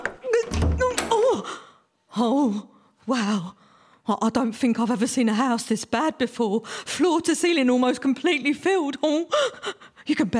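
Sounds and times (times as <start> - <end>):
door thudding against clutter as it's forced open: 0.0 - 1.3
speech: 2.2 - 10.3.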